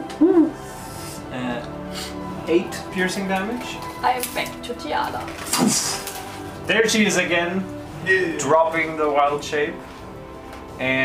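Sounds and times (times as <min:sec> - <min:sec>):
person imitating owl hoot: 0:00.1 - 0:00.6
speech: 0:02.5 - 0:06.1, 0:06.7 - 0:09.9, 0:10.8 - 0:11.0.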